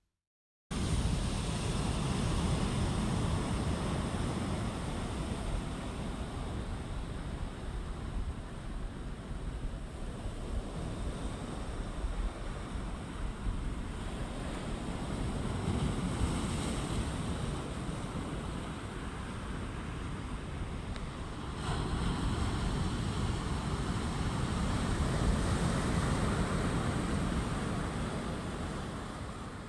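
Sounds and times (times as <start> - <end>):
big sea waves breaking along an open shoreline in a bay: 0.8 - 29.6
wind buffeting the microphone: 0.8 - 29.6.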